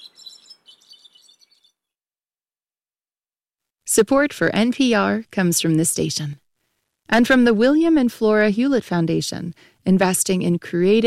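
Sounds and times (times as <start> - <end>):
chorus of high twittering bird calls: 0.0 - 1.8
speech: 4.0 - 6.4, 7.1 - 11.0.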